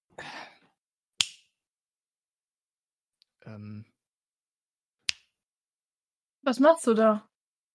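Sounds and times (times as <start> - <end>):
finger snaps: 1.2 - 1.5, 5.0 - 5.3
person murmuring a hesitant filler sound: 3.4 - 3.9
speech: 3.5 - 4.0, 6.4 - 7.3.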